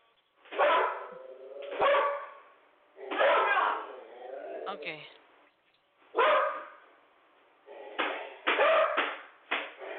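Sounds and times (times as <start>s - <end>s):
dogs barking: 0.5s - 4.1s, 6.1s - 6.8s, 8.0s - 9.2s
speech: 4.7s - 5.2s.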